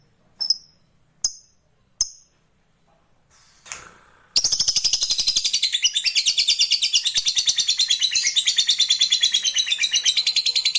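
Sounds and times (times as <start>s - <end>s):
lovebird song: 4.4s - 10.7s.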